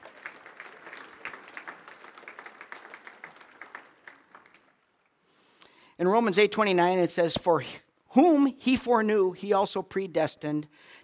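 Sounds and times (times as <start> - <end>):
church audience applauding: 0.0 - 5.2
speech: 6.0 - 11.0.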